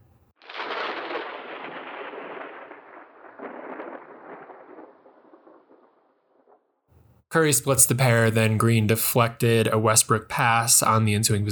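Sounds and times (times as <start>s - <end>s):
crackling thunder: 0.4s - 8.2s
speech: 7.3s - 11.4s.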